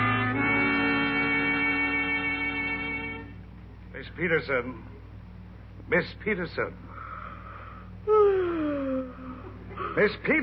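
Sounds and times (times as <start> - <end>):
faint steady hum: 0.0 - 10.4
speech: 4.0 - 5.0, 5.9 - 6.9, 10.0 - 10.4
woman yawning: 8.0 - 9.6.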